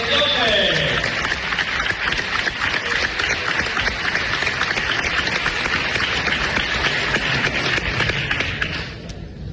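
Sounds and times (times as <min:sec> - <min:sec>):
large crowd applauding loudly: 0:00.0 - 0:09.0.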